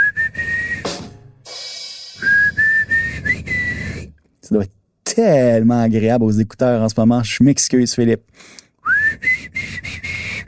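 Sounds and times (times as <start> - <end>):
person whistling a rock song melody: 0.0 - 1.2, 2.0 - 4.1, 8.8 - 10.4
speech: 4.5 - 8.6.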